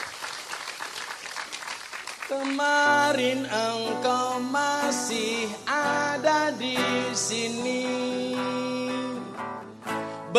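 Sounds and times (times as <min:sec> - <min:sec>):
audience applause for a youth group at an evening religious gathering: 0:00.0 - 0:03.2
speech: 0:02.3 - 0:09.2.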